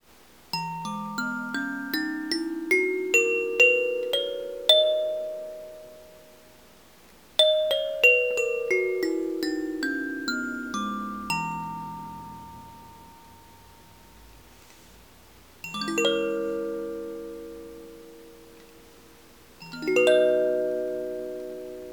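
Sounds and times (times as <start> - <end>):
eleven-note kalimba playing: 0.6 - 6.2, 7.4 - 14.0, 15.7 - 21.9.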